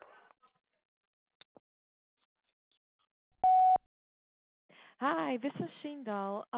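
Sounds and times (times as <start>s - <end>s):
answering machine beep prompting a message: 3.4s - 3.8s
speech: 5.0s - 6.5s.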